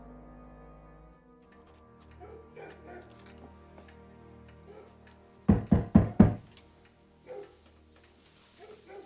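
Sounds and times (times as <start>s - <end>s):
firm knocking on a wooden door: 5.5s - 6.5s.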